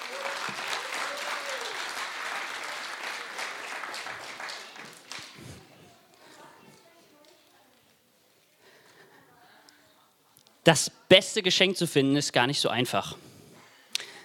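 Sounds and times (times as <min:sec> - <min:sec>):
audience applauding with dense continuous clapping: 0:00.0 - 0:05.7
speech: 0:10.7 - 0:13.3.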